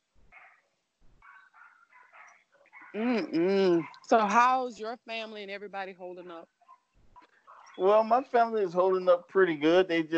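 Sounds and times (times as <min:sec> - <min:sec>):
faint dogs barking: 0:00.3 - 0:00.6, 0:01.2 - 0:04.2, 0:06.6 - 0:09.4
speech: 0:02.9 - 0:06.6, 0:07.8 - 0:10.1.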